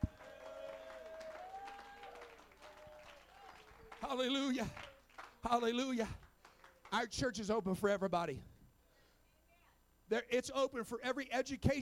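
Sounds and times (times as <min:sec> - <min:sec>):
crowd cheering loudly: 0:00.0 - 0:05.4
crowd applauding: 0:00.0 - 0:07.0
speech: 0:04.0 - 0:06.2, 0:06.9 - 0:08.5, 0:10.1 - 0:11.8.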